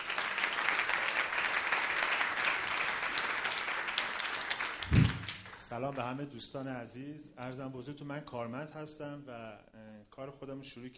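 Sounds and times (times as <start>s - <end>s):
audience applause: 0.0s - 5.7s
brief low thump: 4.9s - 5.3s
speech: 5.8s - 10.9s.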